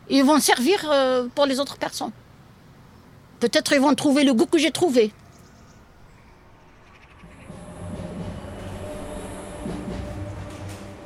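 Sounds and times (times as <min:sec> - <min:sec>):
speech: 0:00.1 - 0:02.2, 0:03.4 - 0:05.2
tram passing on a tram line between apartment blocks in a housing estate: 0:05.8 - 0:11.0.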